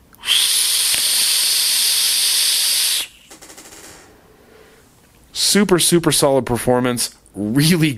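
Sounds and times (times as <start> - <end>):
loud airflow hiss of a rebuildable dripping atomizer vape with a chuff-style top cap: 0.2 - 5.0
speech: 5.5 - 7.9.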